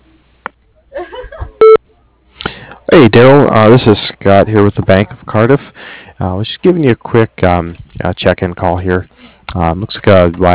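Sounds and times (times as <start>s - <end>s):
laughter: 0.9s - 1.6s
answering machine voicemail beep: 1.6s - 1.8s
speech: 2.9s - 10.5s.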